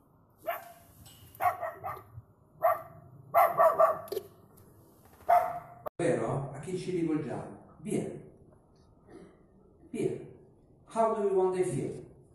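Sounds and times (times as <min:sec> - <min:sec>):
dog barking: 0:00.4 - 0:00.8, 0:01.4 - 0:04.1, 0:05.3 - 0:05.9
speech: 0:06.7 - 0:08.2, 0:11.0 - 0:12.0.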